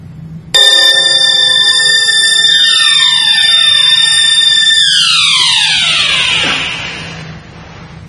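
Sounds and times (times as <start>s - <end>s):
alarm clock ringing: 0.6s - 7.3s.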